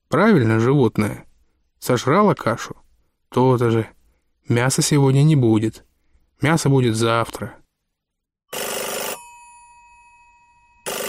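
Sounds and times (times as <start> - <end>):
speech: 0.1 - 7.6
telephone bell ringing loudly: 8.5 - 11.0.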